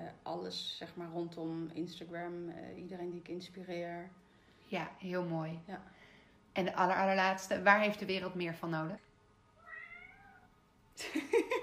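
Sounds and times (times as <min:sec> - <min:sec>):
speech: 0:00.3 - 0:06.0, 0:06.6 - 0:09.0, 0:11.0 - 0:11.4
cat meowing: 0:09.6 - 0:10.5.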